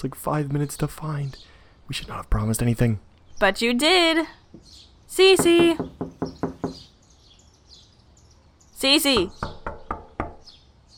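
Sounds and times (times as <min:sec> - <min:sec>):
speech: 0:00.0 - 0:06.4, 0:08.8 - 0:09.6
faint birdsong chirping: 0:00.0 - 0:10.9
knocking on a door: 0:05.4 - 0:06.9, 0:09.1 - 0:10.5.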